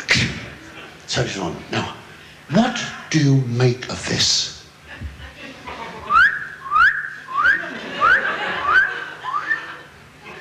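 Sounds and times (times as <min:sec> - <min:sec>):
laughter: 0:00.4 - 0:01.1, 0:04.8 - 0:10.3
speech: 0:01.1 - 0:04.6
person whistling a repeated rising note: 0:06.1 - 0:09.7.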